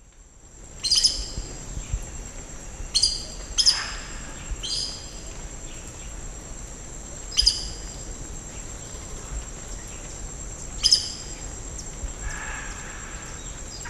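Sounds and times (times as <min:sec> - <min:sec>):
steady background hiss: 0:00.0 - 0:13.8
aracari harsh high-pitched calls: 0:12.2 - 0:13.8.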